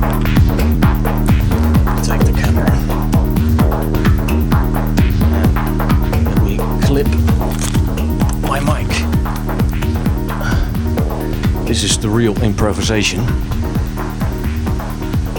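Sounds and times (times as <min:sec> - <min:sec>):
loud constant low rumble: 0:00.0 - 0:15.3
camera shutter clicks while shooting photos: 0:07.5 - 0:07.8
speech: 0:12.2 - 0:13.6.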